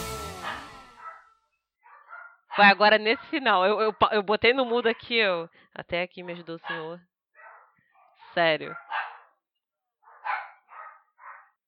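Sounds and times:
several dogs barking and yelping: 0:00.2 - 0:03.4, 0:06.6 - 0:09.4, 0:10.0 - 0:11.6
speech: 0:02.6 - 0:07.1, 0:08.4 - 0:09.1.

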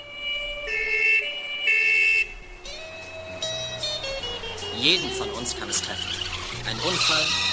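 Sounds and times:
ambulance siren wailing: 0:00.0 - 0:07.5
low road rumble: 0:00.0 - 0:07.5
speech: 0:04.8 - 0:07.5.

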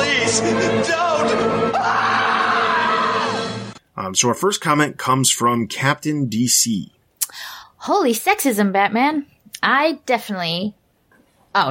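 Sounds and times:
speech: 0:00.3 - 0:02.2, 0:04.0 - 0:10.8
loud sustained high-pitched shriek: 0:01.2 - 0:03.8.

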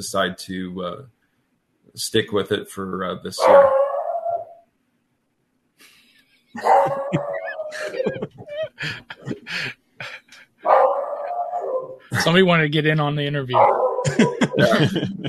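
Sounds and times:
speech: 0:00.0 - 0:01.2, 0:01.9 - 0:03.8, 0:06.6 - 0:10.9, 0:12.1 - 0:15.2
dogs barking and yipping: 0:03.4 - 0:04.6, 0:06.6 - 0:09.6, 0:10.6 - 0:12.4, 0:13.5 - 0:14.9
laughter: 0:06.6 - 0:10.4, 0:12.1 - 0:12.5, 0:14.0 - 0:15.2.

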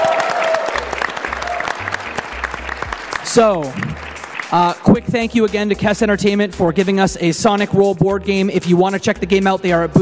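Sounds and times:
small group applauding: 0:00.0 - 0:04.8
speech: 0:03.4 - 0:09.9.

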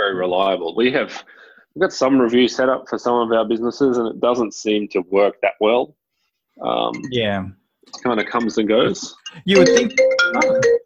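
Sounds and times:
speech: 0:00.1 - 0:06.0, 0:06.6 - 0:10.8
phone ringtone electronic melodic phrase: 0:09.3 - 0:10.8.

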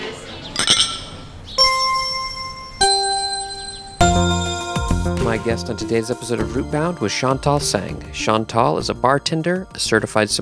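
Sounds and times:
cocktail glasses clinking in an evening toast: 0:00.5 - 0:04.4
speech: 0:05.4 - 0:10.3.

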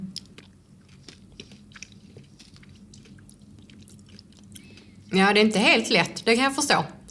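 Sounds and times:
chewing a sweet with wet smacks and crunchy clicks: 0:00.0 - 0:05.2
speech: 0:05.1 - 0:07.0.

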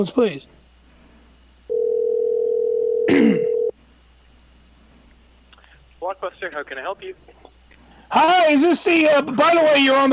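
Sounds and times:
speech: 0:00.0 - 0:00.6, 0:06.1 - 0:07.5, 0:08.1 - 0:10.1
buzzing telephone dial tone: 0:01.7 - 0:03.7.

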